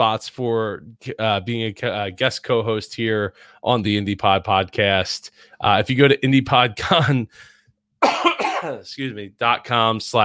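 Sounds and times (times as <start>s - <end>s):
speech: 0.0s - 10.2s
coughing: 8.0s - 8.9s.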